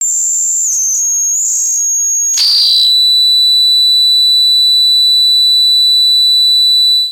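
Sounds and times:
high frequency feedback loop: 2.4 - 3.0.

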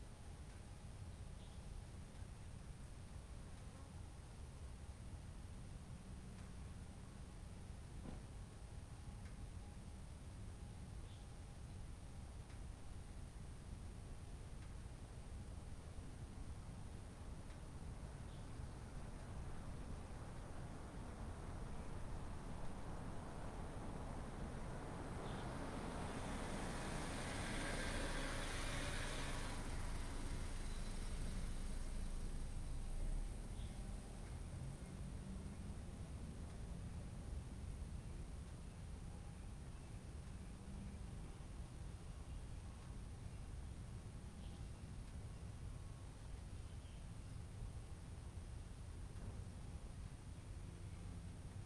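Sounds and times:
cars passing at slow speed on a quiet residential street: 0.0 - 51.6
light bird chirping: 0.5 - 2.4, 10.6 - 13.5, 15.6 - 51.6.

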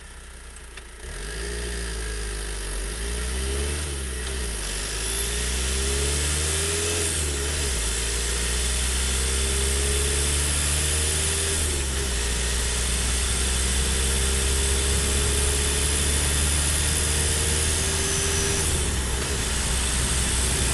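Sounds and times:
Ford Transit Connect T200 van driving on asphalt: 0.0 - 20.7.

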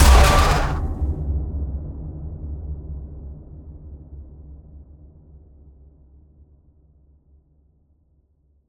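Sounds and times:
distorted intense trailer hit: 0.0 - 1.1.

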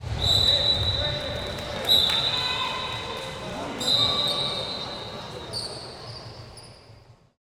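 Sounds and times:
crowd ambience: 0.0 - 7.4
referee whistles: 0.1 - 2.9, 3.8 - 6.8.

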